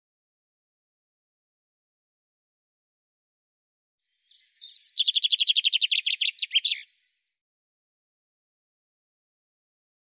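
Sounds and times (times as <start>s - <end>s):
common chaffinch song: 4.1s - 7.1s.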